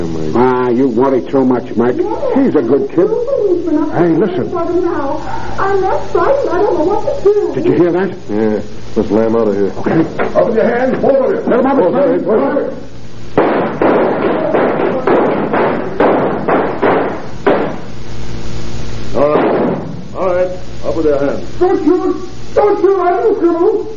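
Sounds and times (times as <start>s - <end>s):
speech: 0.4s - 12.9s, 21.0s - 23.9s
gunshots in a street shootout: 13.4s - 17.9s, 19.3s - 20.0s.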